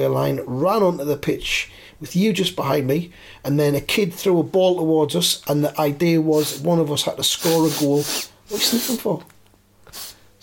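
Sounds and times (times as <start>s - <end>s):
speech: 0.0s - 10.1s
person sniffing sharply through the nose: 6.3s - 6.7s, 7.4s - 9.1s, 9.8s - 10.4s.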